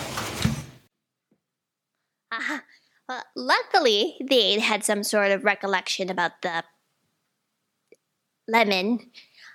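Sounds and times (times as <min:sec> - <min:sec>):
door slamming shut: 0:00.0 - 0:00.8
speech: 0:02.4 - 0:06.7, 0:08.5 - 0:09.3.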